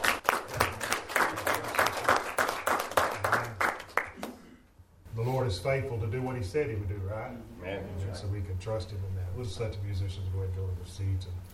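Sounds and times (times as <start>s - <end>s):
church congregation applauding in praise of God: 0.0s - 4.4s
speech: 5.6s - 11.5s.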